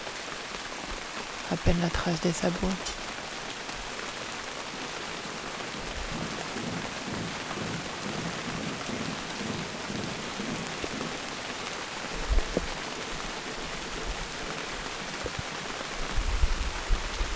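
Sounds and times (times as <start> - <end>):
steady rain hiss: 0.0 - 17.3
speech: 1.5 - 3.0
thunder rumbling: 5.2 - 13.1.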